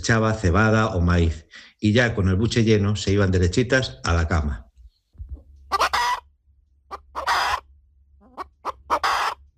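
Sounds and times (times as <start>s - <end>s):
speech: 0.0s - 4.7s
hens clucking and squawking: 5.4s - 6.3s, 6.9s - 9.5s.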